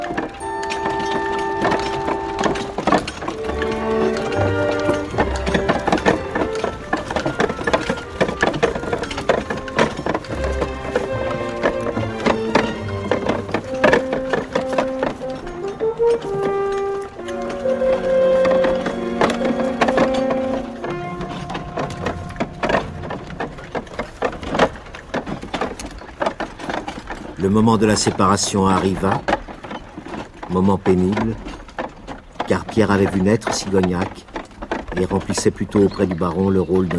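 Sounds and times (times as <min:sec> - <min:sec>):
horse hooves knocking and clattering under an archway: 0:00.0 - 0:36.9
poorly greased wheels of a horse-drawn cart creaking under an archway: 0:00.0 - 0:36.9
speech: 0:27.6 - 0:29.3, 0:30.5 - 0:31.4, 0:32.8 - 0:34.3, 0:35.0 - 0:36.9.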